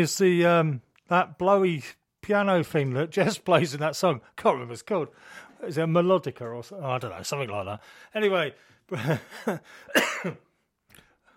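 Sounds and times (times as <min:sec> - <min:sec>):
speech: 0:00.0 - 0:10.5
person coughing: 0:09.0 - 0:10.5.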